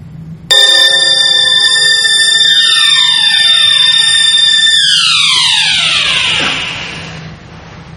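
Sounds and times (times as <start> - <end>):
alarm clock ringing: 0.5 - 7.2.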